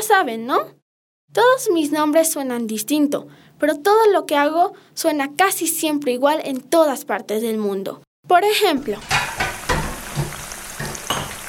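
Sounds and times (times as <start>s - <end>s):
speech: 0.0s - 9.4s
food frying in a pan: 8.8s - 11.4s
stirring scrapes in a pan: 9.0s - 11.4s.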